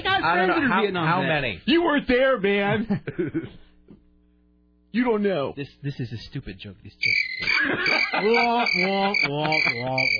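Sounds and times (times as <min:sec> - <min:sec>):
speech: 0:00.2 - 0:03.6, 0:04.9 - 0:10.1
laughter: 0:02.7 - 0:03.6, 0:07.4 - 0:10.1
thin steady high tone: 0:07.0 - 0:10.1
voice mimicking cricket chirping: 0:07.0 - 0:10.1.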